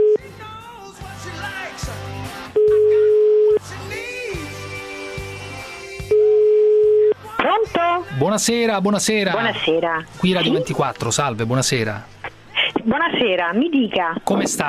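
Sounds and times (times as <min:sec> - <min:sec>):
telephone line ringing tone while a call to a union office connects: 0:00.0 - 0:00.2, 0:02.6 - 0:03.6, 0:06.1 - 0:07.2
rhythmic music: 0:00.0 - 0:14.6
speech: 0:08.2 - 0:12.2, 0:12.8 - 0:14.6.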